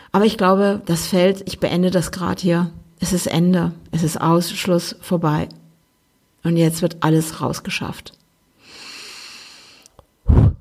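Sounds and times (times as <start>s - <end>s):
speech: 0.1s - 5.6s, 6.4s - 8.2s
person breathing in deeply: 8.6s - 10.5s.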